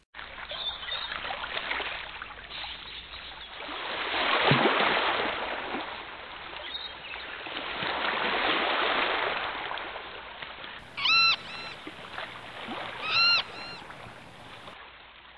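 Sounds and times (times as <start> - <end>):
gentle waves lapping on the shore of a small island in a lagoon: 0.2 - 15.3
gull calling: 10.8 - 14.8.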